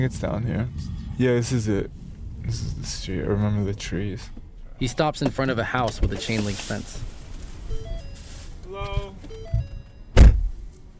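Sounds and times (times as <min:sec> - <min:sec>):
speech: 0:00.0 - 0:07.1
soft shuffle of someone climbing into a car: 0:05.2 - 0:10.7
car door slamming shut: 0:08.9 - 0:10.7.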